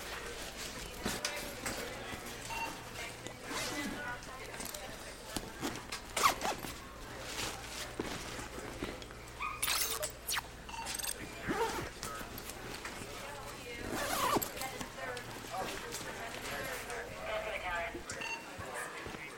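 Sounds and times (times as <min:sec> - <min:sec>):
faint activity: 0:00.0 - 0:19.3
bag zipper being pulled: 0:06.1 - 0:06.8, 0:09.6 - 0:10.5, 0:13.8 - 0:14.6.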